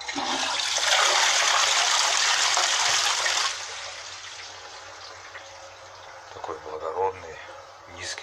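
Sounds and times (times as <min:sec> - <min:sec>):
new wide toilet flushing: 0:00.0 - 0:06.2.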